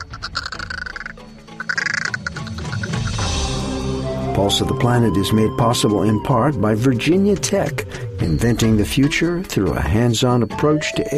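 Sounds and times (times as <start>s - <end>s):
lone crow perched in a tree murmuring with low clucks, gurgles and raspy notes: 0.0s - 3.4s
speech: 4.4s - 11.1s.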